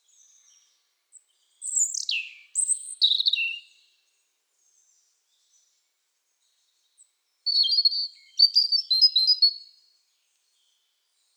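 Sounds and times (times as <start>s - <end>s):
European robin Erithacus rubecula singing a high warbled phrase: 0.1s - 3.8s, 7.5s - 9.7s.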